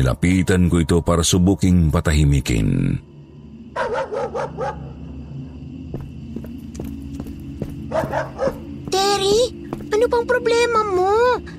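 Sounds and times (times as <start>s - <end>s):
speech: 0.0s - 3.1s, 7.9s - 11.5s
dog tied up in a backyard barking at night: 3.8s - 5.1s, 7.8s - 8.8s
faint clip-clopping footsteps: 5.9s - 10.1s.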